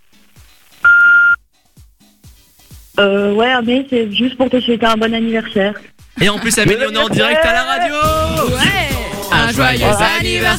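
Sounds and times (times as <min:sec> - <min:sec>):
voicemail beep signal: 0:00.8 - 0:01.4
speech: 0:03.0 - 0:10.5.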